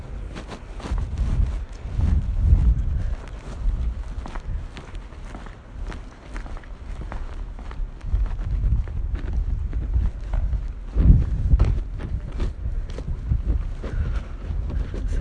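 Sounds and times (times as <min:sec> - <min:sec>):
wind blowing outdoors along quiet back streets: 0:00.0 - 0:15.1.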